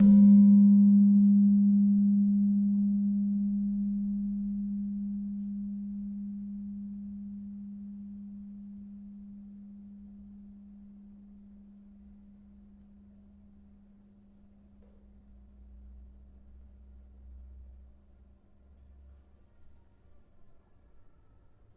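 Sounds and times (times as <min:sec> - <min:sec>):
Slentem 3G Sharp tuned gamelan note: 0:00.0 - 0:07.7.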